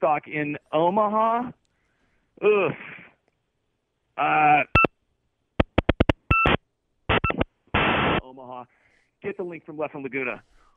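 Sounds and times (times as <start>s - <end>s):
speech: 0.0s - 1.6s, 2.4s - 3.0s, 4.2s - 4.8s, 8.3s - 10.6s
short electronic bleeps and clicks with dual-pitched tones: 4.7s - 4.9s, 5.6s - 7.5s
harsh buzzing burst: 5.6s - 8.2s.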